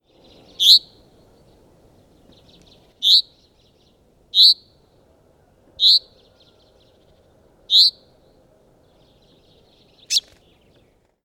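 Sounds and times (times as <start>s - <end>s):
faint low background noise: 0.0s - 11.2s
common chaffinch Fringilla coelebs calls: 0.1s - 1.0s, 2.4s - 3.8s, 5.8s - 6.2s, 7.7s - 8.0s, 9.9s - 10.4s.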